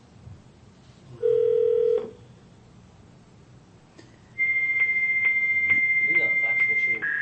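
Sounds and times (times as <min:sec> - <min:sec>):
quiet noise: 0:00.0 - 0:07.1
longer loud high-pitched telephone tone broken by faint clicks: 0:04.4 - 0:07.1
short steady low telephone beep: 0:04.4 - 0:07.1.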